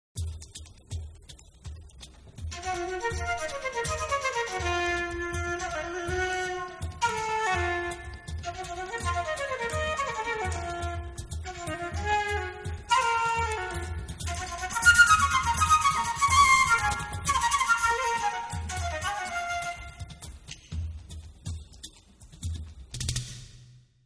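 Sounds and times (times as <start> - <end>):
buleria solo: 2.5 - 20.4.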